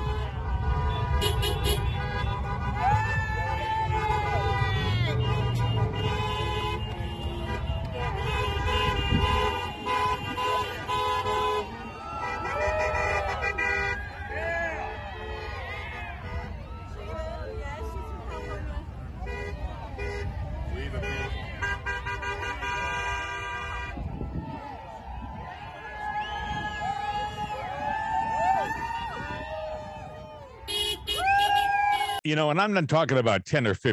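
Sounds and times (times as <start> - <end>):
truck horns honking on a highway: 0.0 - 24.2, 30.5 - 32.2
crowd voices of waving people: 0.0 - 32.2
truck engines rumbling on a highway: 0.0 - 33.8
speech: 32.3 - 33.9.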